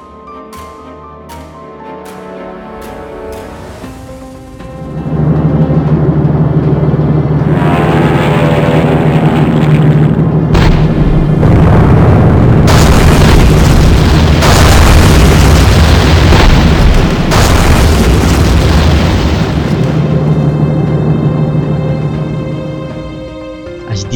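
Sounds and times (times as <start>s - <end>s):
continuous low rumble of artillery bombardment: 4.6s - 22.8s
sharp explosions: 6.3s - 20.4s
booming cannon blasts: 7.3s - 20.3s.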